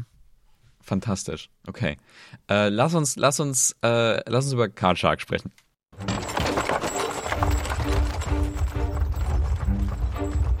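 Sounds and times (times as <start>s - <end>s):
speech: 0.9s - 6.1s
horse hooves clip-clopping of a horse-drawn carriage in a video game: 6.0s - 10.5s
horse-drawn carriage wheels rumbling in a video game: 6.0s - 10.5s.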